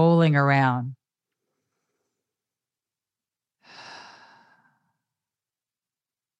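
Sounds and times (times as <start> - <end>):
speech: 0.0 - 1.0
long deep breath: 3.6 - 5.1.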